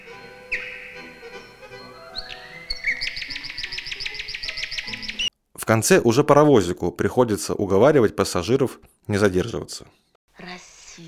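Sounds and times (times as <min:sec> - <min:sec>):
nightingale singing: 0:00.0 - 0:05.3
speech: 0:05.7 - 0:10.0.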